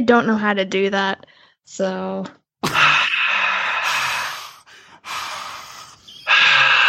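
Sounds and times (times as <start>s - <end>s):
speech: 0.0s - 2.9s
heavy mouth breathing from a failed crowd cheer imitation: 2.6s - 6.8s.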